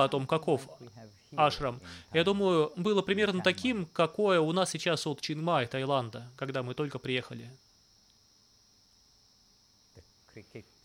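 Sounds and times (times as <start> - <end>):
quiet vocal sounds: 0.0 - 4.0
speech: 0.0 - 7.6, 10.4 - 10.7
crickets chirping: 0.0 - 10.8.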